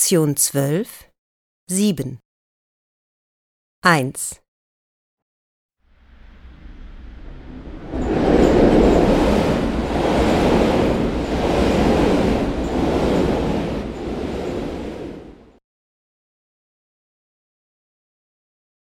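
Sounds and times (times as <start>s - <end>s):
speech: 0.1s - 1.1s, 1.7s - 2.2s, 3.8s - 4.4s
train passing: 5.9s - 15.6s.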